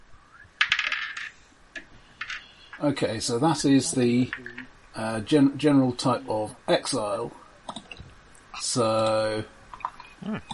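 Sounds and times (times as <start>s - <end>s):
two six-sided dice rolled on a hard surface: 0.6s - 1.4s
speech: 2.8s - 7.4s, 8.7s - 9.6s, 10.2s - 10.5s.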